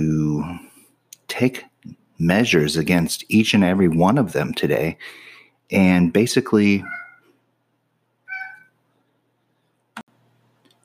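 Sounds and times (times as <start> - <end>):
speech: 1.4 - 7.0
cat meowing: 6.8 - 7.3, 8.2 - 8.8.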